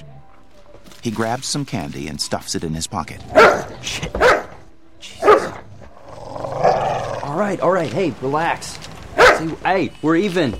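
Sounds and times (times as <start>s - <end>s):
speech: 1.0s - 4.3s, 7.4s - 8.8s, 9.4s - 10.5s
dog barking in a shop: 3.3s - 4.6s, 5.2s - 5.7s, 9.2s - 9.5s.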